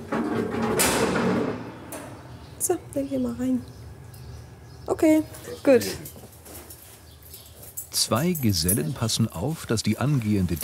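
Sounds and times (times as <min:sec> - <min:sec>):
sliding gate of a polar bear stall scraping open: 0:00.0 - 0:02.6
speech: 0:02.7 - 0:03.8, 0:05.0 - 0:06.2, 0:08.0 - 0:10.6.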